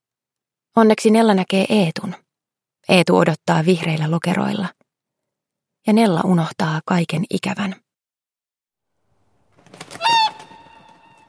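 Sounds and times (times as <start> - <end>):
speech: 0.8 - 2.2, 2.9 - 4.8, 5.8 - 7.8
swan wings flapping: 9.5 - 11.2
swan honking: 9.8 - 11.2.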